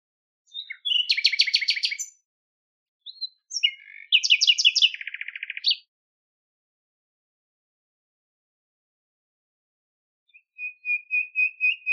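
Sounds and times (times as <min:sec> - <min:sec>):
common nightingale singing: 0:00.5 - 0:02.2, 0:03.0 - 0:05.9, 0:10.3 - 0:11.9.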